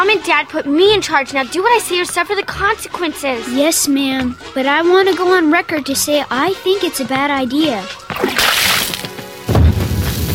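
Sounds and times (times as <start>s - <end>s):
speech: 0.0s - 8.4s
bucket of bath water splashed onto a television: 8.1s - 9.1s
heavy thudding splash: 8.1s - 9.8s.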